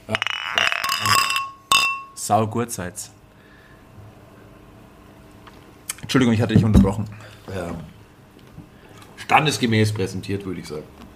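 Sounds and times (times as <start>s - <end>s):
glasses clinking together in a toast: 0.1s - 2.2s
speech: 2.3s - 3.2s, 6.1s - 8.0s, 9.3s - 11.1s.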